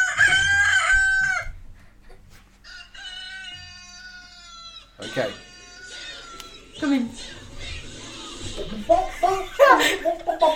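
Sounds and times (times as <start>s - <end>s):
rooster crowing: 0.0s - 1.6s, 2.6s - 6.7s
chickens clucking: 2.0s - 10.5s
speech: 5.2s - 5.5s, 6.8s - 7.4s, 8.7s - 10.5s
laughter: 5.9s - 10.5s.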